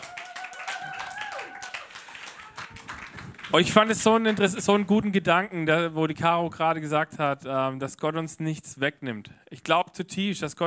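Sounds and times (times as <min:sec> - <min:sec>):
audience applauding a guest off the stage: 0:00.0 - 0:04.5
speech: 0:03.5 - 0:10.6.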